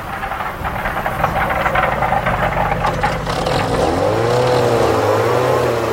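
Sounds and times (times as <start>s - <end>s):
car engine straining as it climbs steep mountain roads: 0.0s - 5.9s.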